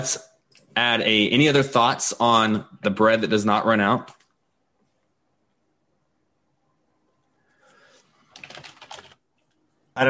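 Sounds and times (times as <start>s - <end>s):
speech: 0.0s - 4.2s
typing on a computer keyboard with plastic key clicks: 8.2s - 9.5s.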